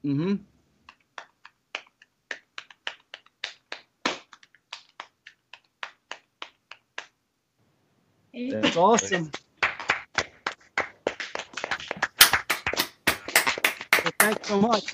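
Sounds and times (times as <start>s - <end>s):
speech: 0.0s - 0.5s, 8.5s - 9.4s, 14.2s - 14.9s
hands tapping a paradiddle drum rudiment on a lap: 0.9s - 7.2s, 9.3s - 14.9s.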